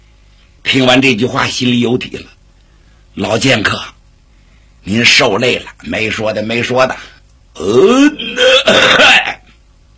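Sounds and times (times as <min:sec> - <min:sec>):
speech: 0:00.7 - 0:02.4, 0:03.2 - 0:03.9, 0:04.8 - 0:09.2
man deliberately clearing his throat with a rasping ahem: 0:07.9 - 0:09.6.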